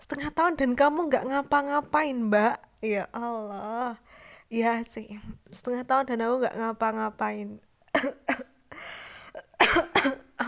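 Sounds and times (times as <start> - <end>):
speech: 0.4 - 9.0, 9.6 - 10.4
raspy wheezing breath: 4.0 - 4.5, 8.7 - 9.4
person ill with fever and a cold coughing: 7.9 - 8.6, 9.3 - 10.4.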